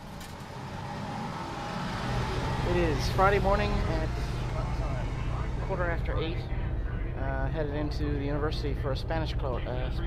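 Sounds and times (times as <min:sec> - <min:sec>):
city bus driving on a cold morning: 0:00.0 - 0:07.2
speech: 0:02.7 - 0:04.3, 0:05.7 - 0:06.6, 0:07.2 - 0:10.0.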